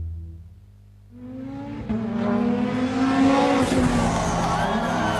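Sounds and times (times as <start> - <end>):
rally cars roaring past, revving hard: 1.1 - 5.1
crowd noise: 3.2 - 5.1.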